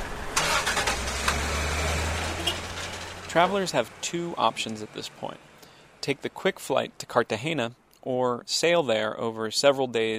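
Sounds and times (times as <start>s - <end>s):
vehicle engines rumbling as port workers drive toward the docks: 0.0s - 6.4s
sharp clanks and knocks: 2.4s - 3.4s
speech: 3.3s - 10.1s.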